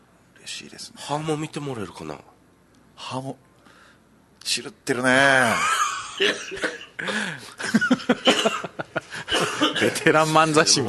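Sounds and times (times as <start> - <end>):
speech: 0.4 - 2.3, 3.0 - 3.5, 4.5 - 9.0, 9.8 - 10.8
laughter: 5.5 - 10.2
person coughing: 6.2 - 7.4, 8.1 - 10.1.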